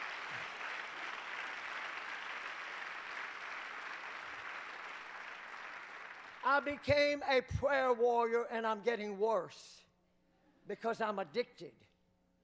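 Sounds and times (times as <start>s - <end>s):
audience applauding: 0.0s - 7.2s
speech: 6.5s - 9.8s, 10.7s - 11.9s.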